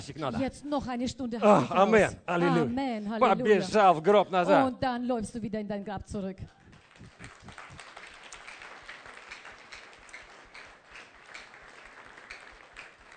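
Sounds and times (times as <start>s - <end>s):
speech: 0.0s - 6.6s
audience clapping: 6.5s - 13.1s.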